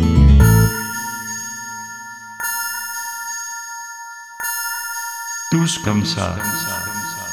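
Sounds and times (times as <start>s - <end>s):
large clock bell striking the midnight chimes: 0.4s - 7.3s
speech: 5.6s - 6.9s.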